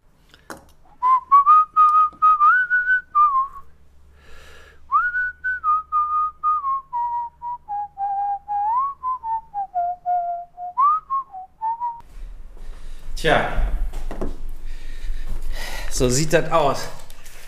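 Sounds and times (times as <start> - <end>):
man whistling a folk-style melody: 1.0 - 3.7, 4.9 - 12.0
speech: 13.2 - 13.6, 16.0 - 17.0.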